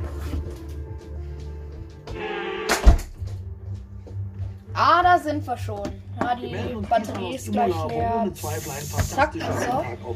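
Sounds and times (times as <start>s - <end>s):
door swinging shut with a creaking scrape: 2.2s - 3.2s
door closing with a solid thud: 2.7s - 3.3s
speech: 4.8s - 10.1s.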